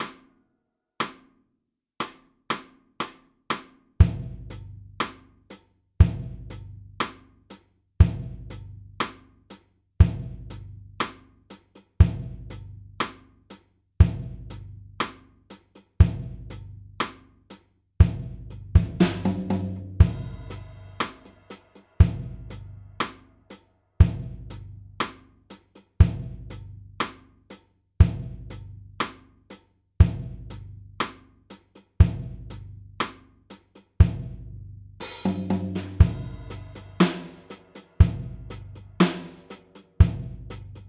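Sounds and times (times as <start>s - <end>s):
drum beat at 120 BPM: 0.0s - 0.2s, 2.0s - 5.2s, 6.0s - 7.2s, 8.0s - 9.3s, 10.0s - 11.3s, 12.0s - 13.2s, 14.0s - 15.2s, 16.0s - 17.2s, 18.0s - 29.2s, 30.0s - 31.3s, 31.9s - 40.8s.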